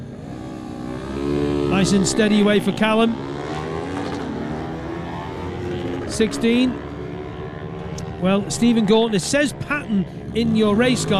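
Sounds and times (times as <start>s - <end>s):
motorcycle engine running at the race start line: 0.0s - 11.1s
speech: 1.7s - 3.3s, 6.2s - 6.8s, 8.2s - 11.1s.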